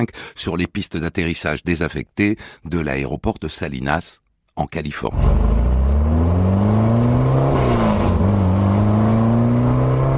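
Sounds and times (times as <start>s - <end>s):
speech: 0.0s - 6.3s
sports car engine revving: 5.2s - 10.1s.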